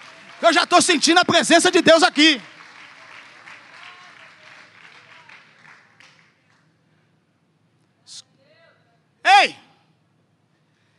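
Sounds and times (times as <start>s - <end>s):
audience applauding: 0.0s - 6.7s
speech: 0.4s - 2.5s.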